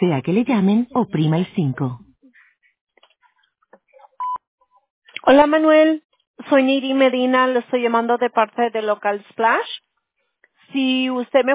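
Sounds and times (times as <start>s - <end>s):
speech: 0.0s - 2.1s, 5.2s - 9.8s, 10.7s - 11.5s
voicemail system recording beep tone: 4.2s - 4.4s.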